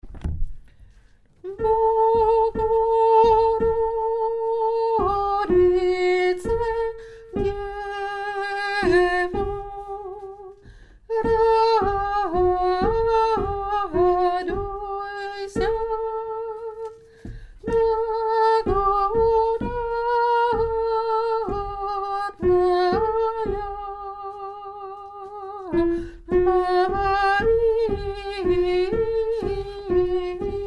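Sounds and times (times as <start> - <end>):
soprano singing: 1.4 - 17.0, 17.6 - 30.6.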